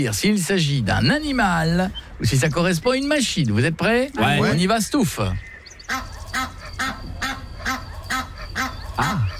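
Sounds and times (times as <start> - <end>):
speech: 0.0 - 6.1
low rumble: 0.0 - 9.3
goose honking: 5.9 - 9.3.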